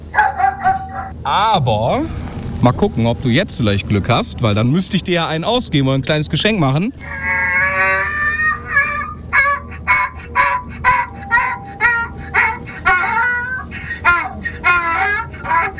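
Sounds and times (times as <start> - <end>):
donkey braying: 0.0 - 1.2, 7.0 - 15.7
speech: 1.2 - 7.2.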